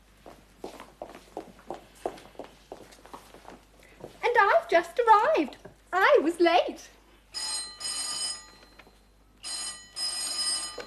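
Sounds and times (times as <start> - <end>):
speech: 4.7 - 7.0
telephone bell ringing with shrill jangling rings: 7.3 - 10.8.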